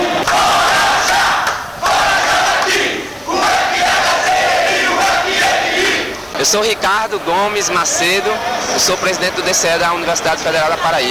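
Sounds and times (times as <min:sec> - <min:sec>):
rowdy crowd chanting and shouting at a student assembly: 0:00.0 - 0:11.1
speech: 0:06.4 - 0:11.1.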